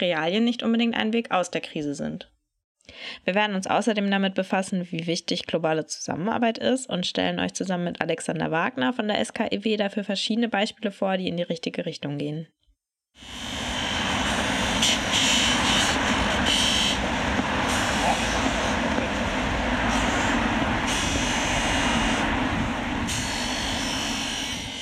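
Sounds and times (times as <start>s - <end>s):
speech: 0.0s - 12.6s, 13.2s - 13.5s
city street traffic with heavy engines rumbling: 13.2s - 24.8s
construction site noise: 13.2s - 24.8s.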